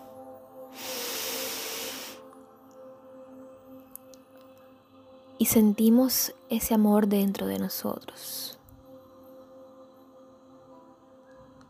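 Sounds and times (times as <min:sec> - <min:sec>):
person exhaling breath during a guided breathing exercise: 0:00.7 - 0:02.2
speech: 0:05.4 - 0:08.6.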